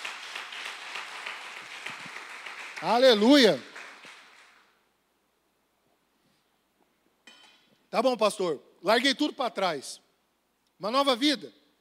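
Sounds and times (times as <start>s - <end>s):
crowd applauding: 0.0s - 4.8s
speech: 2.8s - 3.7s, 7.9s - 10.0s, 10.8s - 11.6s.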